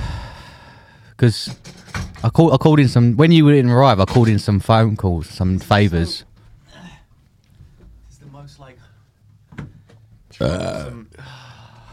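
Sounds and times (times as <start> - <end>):
speech: 1.2 - 6.3, 10.4 - 11.4
loud drawn-out rough croaky burp: 10.4 - 11.2.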